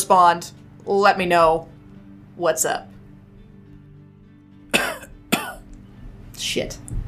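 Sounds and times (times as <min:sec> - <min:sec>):
speech: 0:00.1 - 0:01.7, 0:02.4 - 0:02.9, 0:06.4 - 0:07.0
person coughing: 0:04.7 - 0:05.6.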